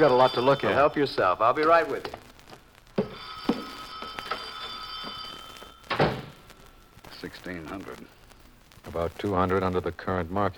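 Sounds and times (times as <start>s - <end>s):
telephone ringing in an office: 0.0s - 1.9s, 3.0s - 6.3s
speech: 0.0s - 2.2s, 7.3s - 8.2s, 8.8s - 10.5s.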